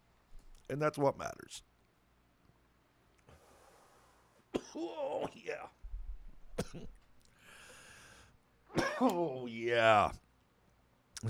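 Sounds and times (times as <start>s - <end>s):
speech: 0.7s - 1.7s, 4.7s - 5.8s, 6.6s - 7.0s, 8.7s - 10.2s
person breathing: 3.3s - 4.4s, 7.3s - 8.4s
person coughing after smoking: 4.5s - 5.7s, 6.6s - 7.0s, 8.7s - 9.4s.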